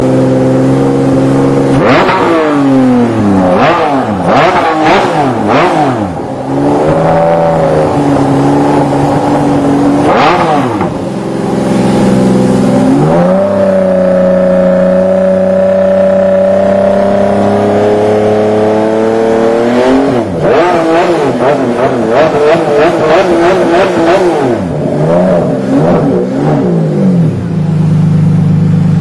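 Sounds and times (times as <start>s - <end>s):
Ferrari Enzo engine: 0.0s - 29.0s.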